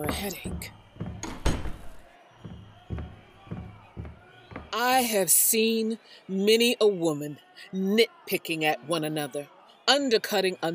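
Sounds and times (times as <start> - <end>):
speech: 0.0 - 0.8, 4.7 - 10.7
soft knocks or footsteps: 0.0 - 4.8
door shutting with a solid thud: 0.5 - 4.2.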